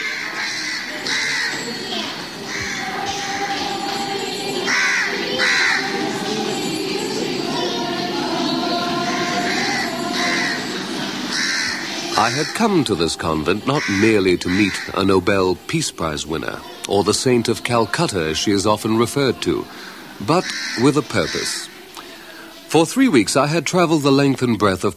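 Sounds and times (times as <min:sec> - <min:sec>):
crows cawing from rooftops around a convent courtyard: 0:00.0 - 0:06.4, 0:09.0 - 0:12.7, 0:13.7 - 0:15.0, 0:19.7 - 0:22.5
steady murmur of city noise: 0:00.0 - 0:24.9
speech: 0:12.2 - 0:21.7, 0:22.7 - 0:24.9.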